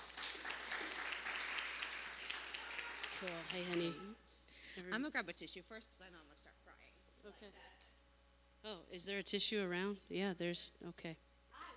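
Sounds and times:
audience applause: 0.0 - 4.1
speech: 3.2 - 4.2, 4.8 - 7.9, 8.6 - 11.7.

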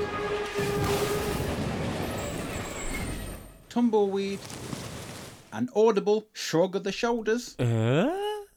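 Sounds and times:
high drawn-out metallic squeals of a train wreck: 0.0 - 3.7
rumble of rolling rail cars in a train wreck: 0.0 - 3.8
speech: 3.7 - 4.8, 5.5 - 8.2.

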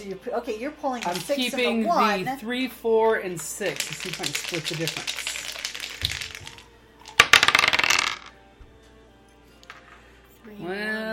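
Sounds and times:
speech: 0.0 - 5.3, 10.7 - 11.0
two dice rolling across a hard tabletop: 1.0 - 1.6, 3.6 - 8.3.

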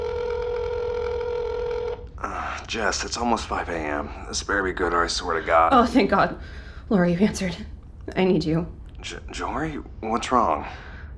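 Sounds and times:
buzzy telephone ring tone on an outgoing call heard through a handset: 0.0 - 2.1
speech: 2.7 - 10.9.

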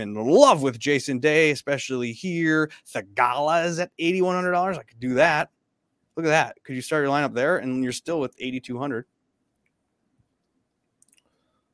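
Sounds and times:
speech: 0.0 - 5.6, 6.2 - 9.1
faint steady hum: 0.0 - 11.7
computer mouse clicks: 10.4 - 11.4.

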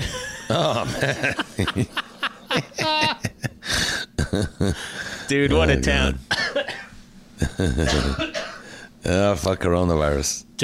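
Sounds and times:
laughter: 0.0 - 5.2, 7.4 - 8.2
speech: 0.5 - 3.0, 4.4 - 6.3, 7.5 - 8.3, 9.0 - 10.6
person coughing from feeling ill: 6.3 - 8.7.

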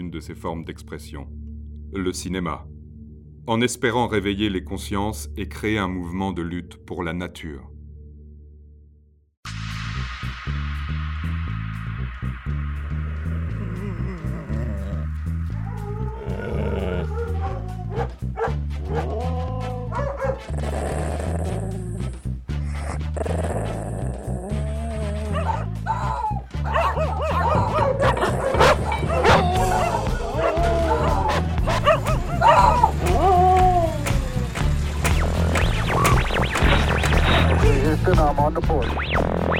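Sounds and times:
music: 0.0 - 39.5
speech: 0.1 - 2.7, 3.4 - 7.7, 38.2 - 39.5
dog barking and yipping: 17.1 - 19.3, 19.9 - 20.5, 25.3 - 34.4
dog whimpering: 18.9 - 26.4, 27.0 - 34.4.

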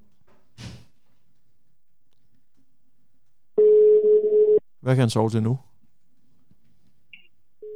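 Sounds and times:
outgoing telephone call ringing tone: 3.6 - 4.6
phone line electronic beep after hung-up call: 3.6 - 4.6, 7.2 - 7.7
speech: 4.9 - 5.7.

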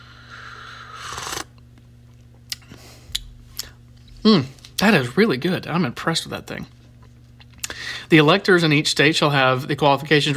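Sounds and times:
person sipping a drink: 0.7 - 1.5
speech: 4.2 - 6.8, 8.1 - 10.3.

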